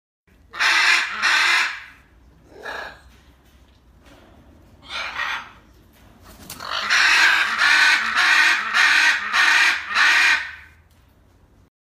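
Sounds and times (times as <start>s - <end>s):
red-fronted macaw calling: 0.5s - 2.0s, 6.6s - 10.7s.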